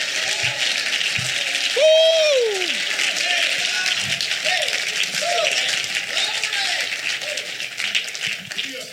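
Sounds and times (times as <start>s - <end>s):
crowd clapping: 0.0s - 8.9s
voices shouting and whooping over applause: 1.8s - 2.8s.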